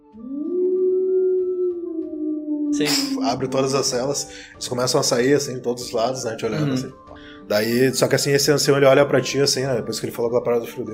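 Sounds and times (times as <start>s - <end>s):
person imitating a howl with a long rising wail: 0.0s - 3.5s
speech: 2.8s - 10.9s.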